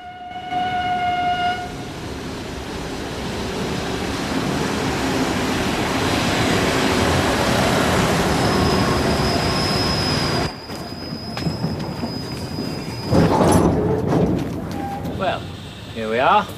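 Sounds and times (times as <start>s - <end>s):
brief horn-like tone: 0.0s - 1.8s
train rumbling into a station at night: 0.0s - 16.5s
train wheels grinding along the rails: 2.0s - 16.5s
long high train brake squeal: 8.2s - 14.0s, 14.7s - 16.5s.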